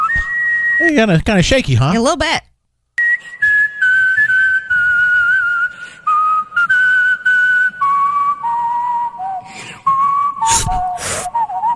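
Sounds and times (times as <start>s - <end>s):
person whistling a melody: 0.0s - 0.9s, 3.0s - 11.7s
speech: 0.8s - 2.5s
sharp breathy bursts from the whistler: 9.3s - 11.6s.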